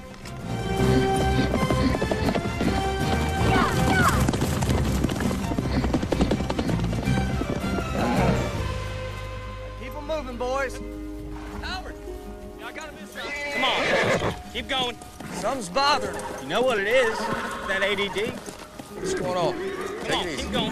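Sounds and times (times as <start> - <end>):
mustang galloping hoofbeats: 0.0 - 20.7
mustang whinnying and neighing: 0.6 - 8.6, 13.2 - 14.6, 15.2 - 20.7
speech: 14.9 - 20.7.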